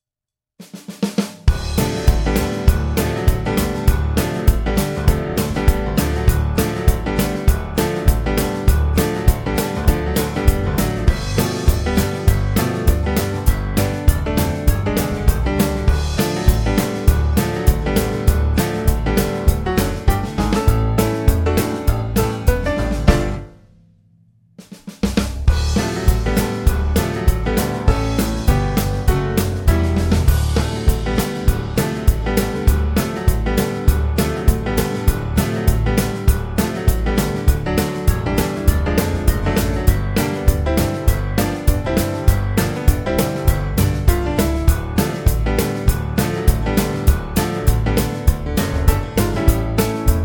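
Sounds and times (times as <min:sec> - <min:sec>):
country blues music: 0:01.5 - 0:23.4, 0:25.6 - 0:50.2.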